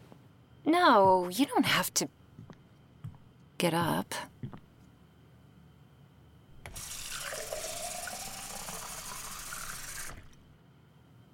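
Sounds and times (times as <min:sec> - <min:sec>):
speech: 0:00.7 - 0:02.2, 0:03.6 - 0:04.3
water pouring into a cup: 0:06.7 - 0:10.4.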